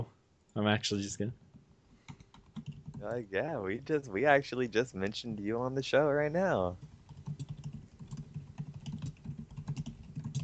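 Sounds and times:
speech: 0.0s - 1.4s, 3.0s - 6.9s
typing on a computer keyboard: 2.0s - 3.1s, 6.8s - 10.4s.

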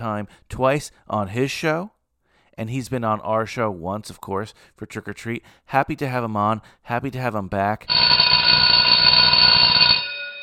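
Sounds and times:
speech: 0.0s - 2.0s, 2.6s - 8.3s
loud electric school bell ringing: 7.9s - 10.4s.

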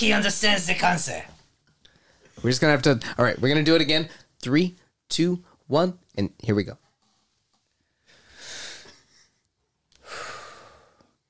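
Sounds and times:
speech: 0.0s - 1.4s, 2.4s - 6.8s
heavy breathing into microphone: 7.8s - 9.3s, 10.0s - 11.2s.

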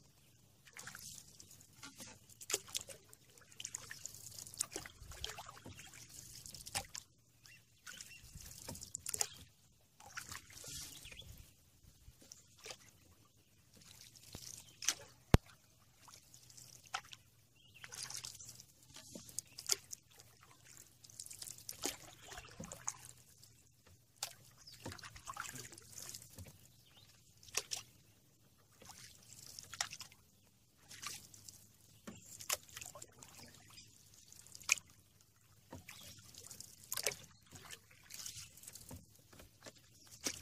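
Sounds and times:
brighter paddle splashes on a river: 0.0s - 40.4s
water trickling against a canoe hull on a lazy river: 0.0s - 40.4s.

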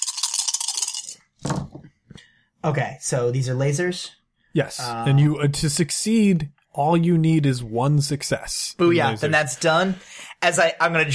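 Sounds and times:
four dice rattling in a cup or hand: 0.0s - 1.2s
dice tumbling onto a hard table: 0.0s - 1.6s
speech: 2.6s - 11.1s.

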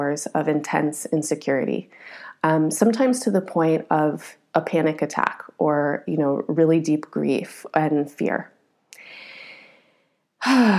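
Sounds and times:
speech: 0.2s - 9.2s, 10.4s - 10.7s
deep breath with soft airy exhale: 9.0s - 10.7s.

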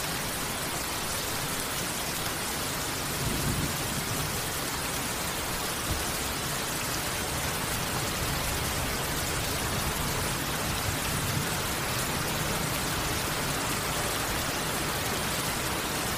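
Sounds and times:
black rain: 0.0s - 16.1s
thunderstorm: 3.0s - 4.6s, 7.8s - 15.4s.

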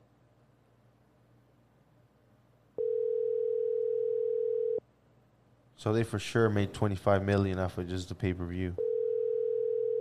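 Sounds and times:
phone ringing tone as a call is placed: 2.8s - 4.8s, 8.8s - 9.9s
speech: 5.8s - 8.9s.

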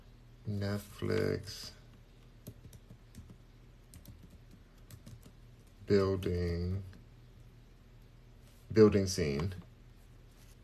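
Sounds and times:
faint low hum: 0.0s - 10.6s
speech: 0.5s - 1.8s, 5.9s - 6.9s, 8.7s - 9.6s
typing a search query on a computer keyboard: 2.4s - 5.7s.

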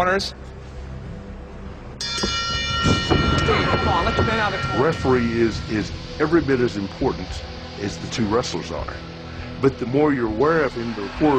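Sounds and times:
speech: 0.0s - 0.6s, 3.7s - 11.3s
wrestling ring bell clanging to start a match: 2.0s - 6.4s.

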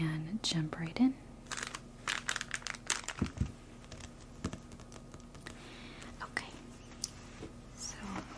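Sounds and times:
speech: 0.0s - 1.3s
plastic bag crinkling as it is pulled off magazines: 1.4s - 5.6s.

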